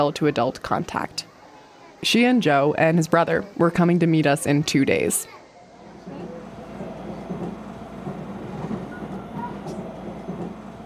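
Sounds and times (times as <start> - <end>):
speech: 0.0 - 1.3, 2.0 - 5.4
train rumbling on rails heard from inside the carriage: 6.2 - 10.8.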